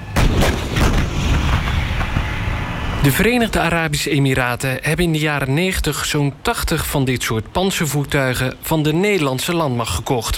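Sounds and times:
howitzer firing in a war: 0.0s - 3.6s
speech: 3.0s - 10.3s.

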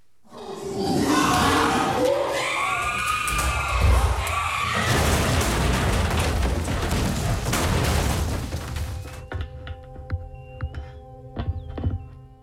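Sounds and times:
two monkeys fighting and screaming in a centre: 0.3s - 5.3s
knocks and clattering: 3.2s - 10.8s.

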